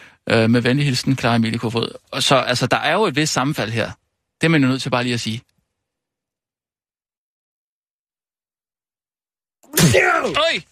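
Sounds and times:
speech: 0:00.3 - 0:05.5, 0:09.7 - 0:10.7
person sneezing: 0:09.7 - 0:10.4.

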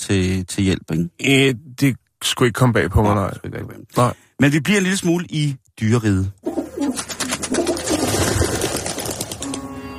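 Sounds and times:
speech: 0:00.0 - 0:07.6
pigeons cooing in low throaty warbles: 0:06.4 - 0:09.4.

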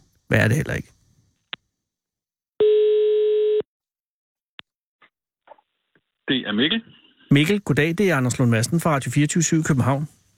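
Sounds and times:
speech: 0:00.3 - 0:01.0, 0:06.3 - 0:10.2
telephone line tone from a radio studio call: 0:02.6 - 0:03.6.

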